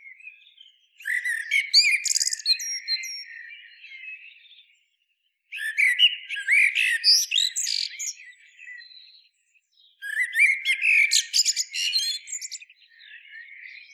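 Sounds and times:
common blackbird Turdus merula twittering and chatter: 0:00.1 - 0:04.4, 0:05.6 - 0:09.2, 0:10.0 - 0:13.9.

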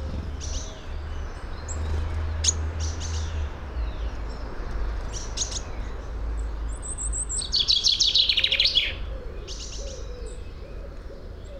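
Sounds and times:
low steady rumble: 0:00.0 - 0:01.4
common chaffinch Fringilla coelebs song: 0:00.0 - 0:11.5.

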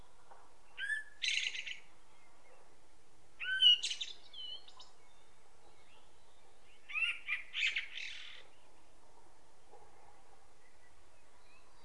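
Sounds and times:
Common blackbird Turdus merula squeaky harmonic calls: 0:00.8 - 0:01.9, 0:03.4 - 0:05.2, 0:05.8 - 0:08.6.

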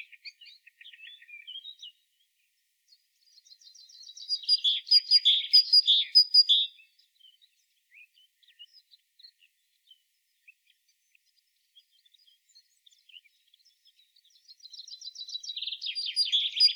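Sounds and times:
Parus major great tit calls: 0:03.5 - 0:06.8, 0:14.5 - 0:16.7.

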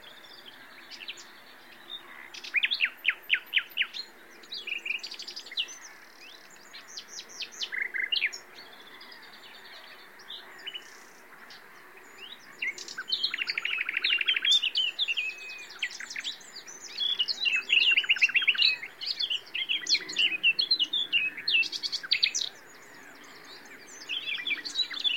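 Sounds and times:
common nightingale Luscinia megarhynchos singing: 0:00.0 - 0:25.1.

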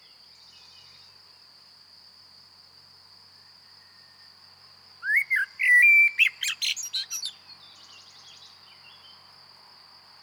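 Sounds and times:
common blackbird Turdus merula singing: 0:05.0 - 0:07.4.

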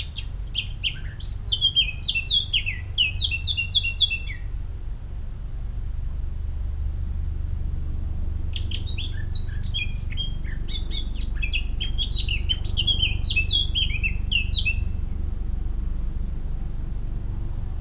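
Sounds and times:
Eurasian blackcap Sylvia atricapilla warbling song: 0:00.0 - 0:04.3, 0:08.6 - 0:14.9
low steady rumble: 0:04.5 - 0:17.7.

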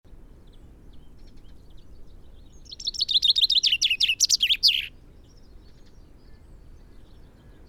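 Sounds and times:
Common chaffinch Fringilla coelebs song: 0:02.5 - 0:05.0.

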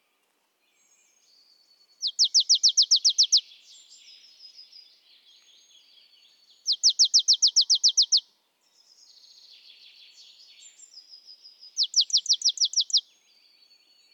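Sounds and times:
marsh tit Poecile palustris calls: 0:02.0 - 0:03.4, 0:06.7 - 0:08.2, 0:11.8 - 0:13.0.

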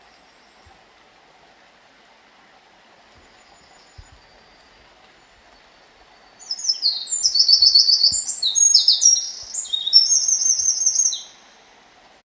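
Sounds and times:
Eurasian wren Troglodytes troglodytes song: 0:03.2 - 0:11.6.

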